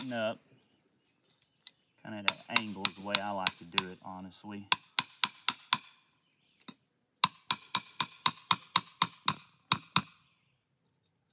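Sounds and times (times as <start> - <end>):
hammering a metal trap stake into hard ground: 0.0 - 0.2, 2.2 - 4.1, 4.7 - 6.0, 6.7 - 10.2
speech: 0.0 - 0.5, 2.0 - 4.9.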